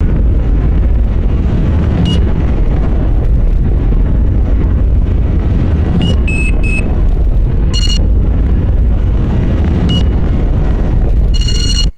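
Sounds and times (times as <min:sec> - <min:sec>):
distorted drone: 0:00.0 - 0:11.9
repeating digital beeps: 0:02.1 - 0:02.3, 0:06.0 - 0:06.9, 0:07.8 - 0:08.0, 0:09.9 - 0:10.2, 0:11.3 - 0:11.9.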